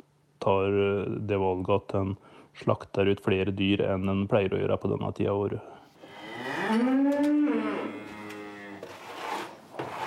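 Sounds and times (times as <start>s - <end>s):
speech: 0.4s - 5.8s
barn noises: 6.0s - 9.4s
cows mooing: 6.1s - 8.9s.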